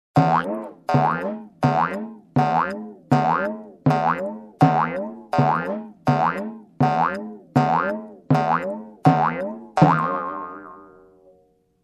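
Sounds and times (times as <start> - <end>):
drum: 0.2 - 10.3
comedy spring jump: 0.2 - 11.4.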